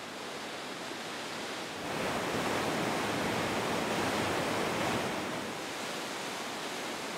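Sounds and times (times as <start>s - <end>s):
gushing mountain stream cascading down the mountainside, fed by glacial water and rain: 0.0s - 7.1s.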